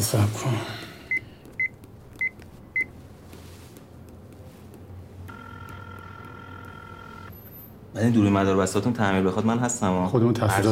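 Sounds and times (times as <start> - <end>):
speech: 0.0 - 0.8, 7.9 - 10.7
electronic telephone keypad beeps while dialing: 1.1 - 2.9, 5.3 - 7.7.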